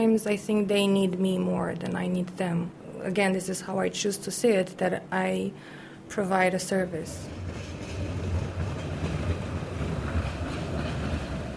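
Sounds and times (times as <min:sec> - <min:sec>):
speech: 0:00.0 - 0:07.8
tram rumbling past on a lively street in Bucharest: 0:06.8 - 0:11.5.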